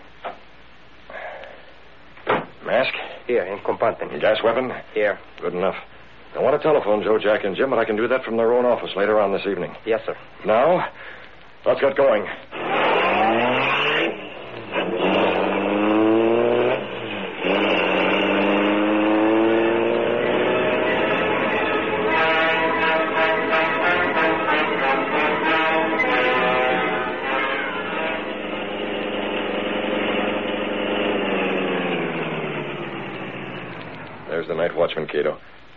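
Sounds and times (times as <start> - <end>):
speech: 2.7 - 12.8
car engine revving through gear changes and idling: 12.5 - 34.4.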